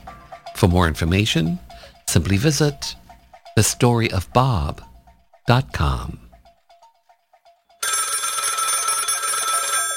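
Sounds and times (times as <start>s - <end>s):
speech: 0.6s - 3.0s, 3.6s - 4.9s, 5.5s - 6.2s
telephone bell ringing: 7.8s - 9.9s.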